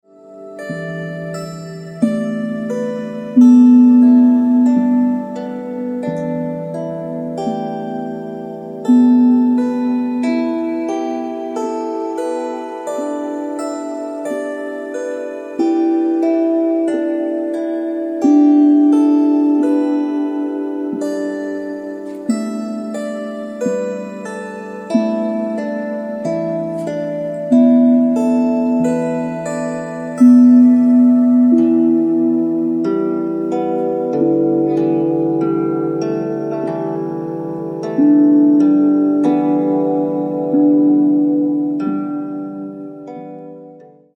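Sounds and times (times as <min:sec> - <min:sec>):
lyre: 0:00.0 - 0:44.1.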